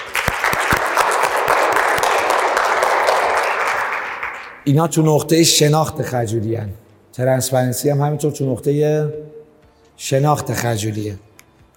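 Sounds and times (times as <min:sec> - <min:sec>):
audience applause: 0:00.0 - 0:04.6
speech: 0:04.7 - 0:09.4, 0:10.0 - 0:11.3.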